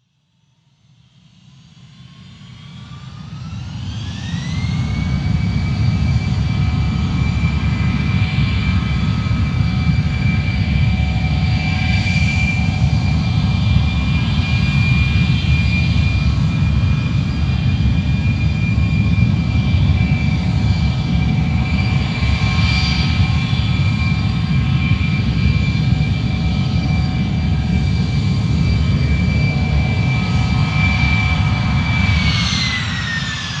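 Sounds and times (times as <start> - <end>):
airplane jet engine revving: 3.3 - 33.5.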